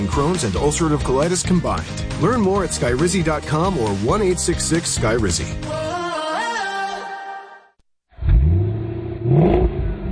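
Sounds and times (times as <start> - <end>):
speech: 0.1 - 5.9
1970 Cuda AAR muscle car big engine revving: 8.2 - 10.1.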